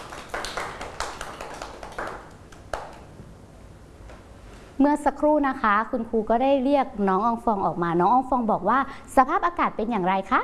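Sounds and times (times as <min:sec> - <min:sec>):
children in a class clapping hands for a classmate: 0:00.0 - 0:03.1
speech: 0:04.8 - 0:10.4.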